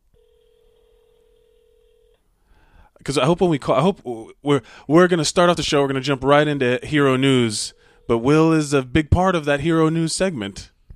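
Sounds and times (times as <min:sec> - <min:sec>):
ringback tone of an outgoing phone call: 0:00.2 - 0:02.2
speech: 0:03.0 - 0:10.7.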